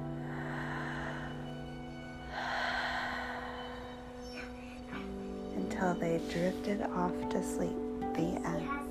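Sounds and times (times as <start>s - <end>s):
storyteller imitating slow breathing: 0.1s - 5.2s
speech: 5.8s - 8.8s.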